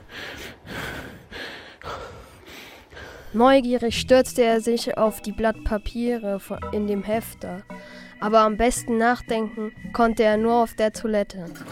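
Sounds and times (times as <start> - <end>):
man panting loudly after running a marathon: 0.0 - 3.3
speech: 3.3 - 11.7.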